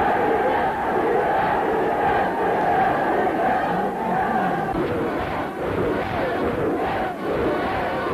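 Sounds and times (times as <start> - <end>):
large crowd cheering and shouting: 0.0 - 8.1.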